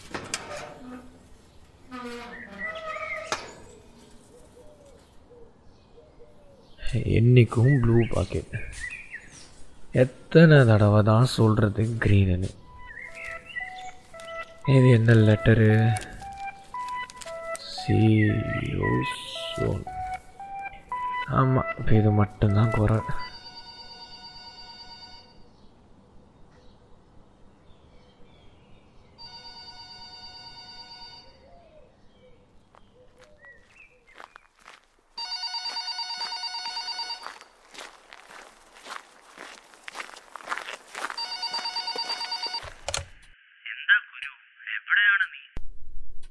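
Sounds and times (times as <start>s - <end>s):
shuffling footsteps: 0.0s - 5.3s, 7.4s - 23.6s, 32.5s - 42.9s
speech: 7.0s - 8.9s, 10.0s - 12.6s, 14.7s - 16.1s, 17.9s - 20.0s, 21.3s - 23.2s
telephone ringtone in loud tonal bursts: 12.6s - 25.4s, 29.2s - 31.4s, 35.2s - 37.5s, 41.1s - 42.8s.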